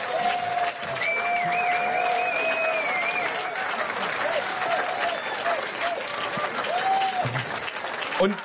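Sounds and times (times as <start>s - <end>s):
audience applauding an author: 0.0s - 8.4s
whistles from the audience: 1.0s - 3.5s, 5.0s - 5.6s
speech: 8.2s - 8.4s.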